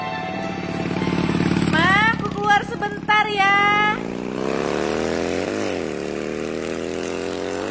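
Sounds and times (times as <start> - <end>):
motorbike engine droning: 0.0 - 7.6.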